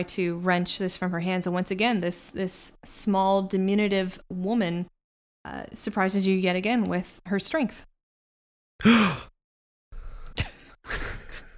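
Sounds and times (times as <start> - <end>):
speech: 0.0 - 7.9, 8.8 - 9.3
breathy rustling exhales: 8.8 - 9.3
person gasping in shock: 8.8 - 9.3.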